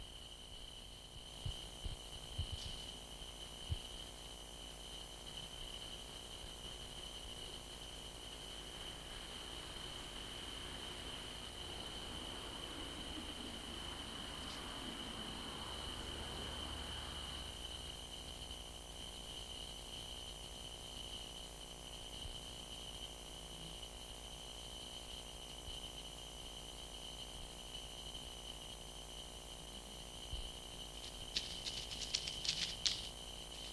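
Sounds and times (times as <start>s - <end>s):
crickets chirping in a continuous high trill at night: 0.0s - 33.7s
soft rustling: 31.0s - 33.7s.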